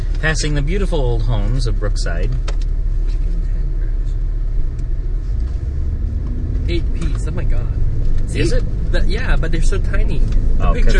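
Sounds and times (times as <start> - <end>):
car interior engine and road drone while driving in stop-and-go traffic: 0.0 - 10.9
speech: 0.2 - 2.7, 6.7 - 10.9.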